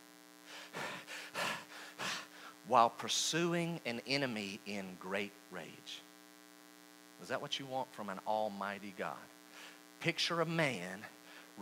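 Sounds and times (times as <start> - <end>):
man panting heavily: 0.5 - 2.6
speech: 2.7 - 6.1, 7.2 - 9.4, 10.0 - 11.6.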